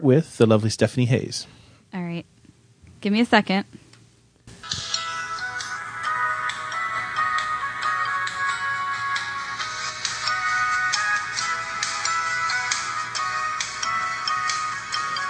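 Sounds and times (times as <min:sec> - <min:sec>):
speech: 0:00.0 - 0:02.3, 0:03.0 - 0:03.8
sitcom theme song played as phone ringtone: 0:04.6 - 0:15.2.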